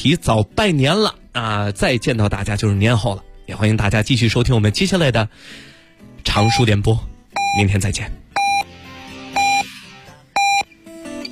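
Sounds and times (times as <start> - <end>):
speech: 0.0 - 8.2
radio hourly time signal beeps marking midnight: 6.4 - 6.7, 7.4 - 7.6, 8.4 - 8.7, 9.4 - 9.7, 10.4 - 10.7.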